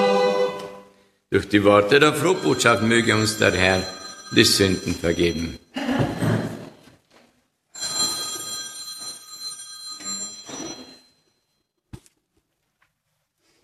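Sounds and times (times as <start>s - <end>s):
speech: 1.3s - 6.0s
telephone ringing with high-pitched electronic trill during a church service: 1.7s - 5.7s, 7.8s - 11.5s.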